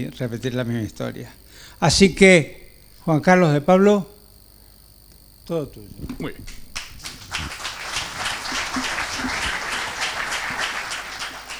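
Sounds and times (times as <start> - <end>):
speech: 0.0 - 4.1, 5.5 - 6.6
audience applause at a talk on politics and economics: 6.8 - 11.5.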